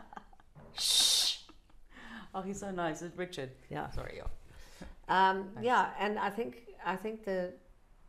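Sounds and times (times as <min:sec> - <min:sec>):
person sneezing: 0:00.7 - 0:01.5
speech: 0:02.4 - 0:04.4, 0:05.1 - 0:07.6.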